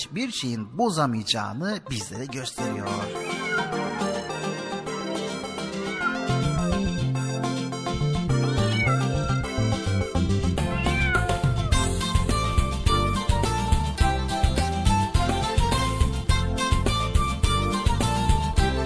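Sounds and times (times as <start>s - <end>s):
speech: 0.0s - 3.8s
lively music with steady bass and bright instruments: 0.0s - 18.8s
cat meowing: 3.0s - 4.7s, 5.4s - 6.9s, 8.5s - 9.6s, 10.6s - 11.8s.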